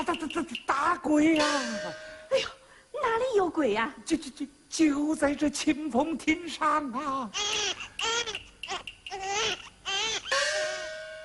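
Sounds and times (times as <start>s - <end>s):
speech: 0.1s - 7.8s
baby crying on a pavilion: 7.3s - 11.0s.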